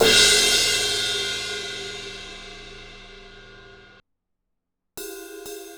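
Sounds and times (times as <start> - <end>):
18 inch fast crash ride cymbal bell: 0.0 - 3.9.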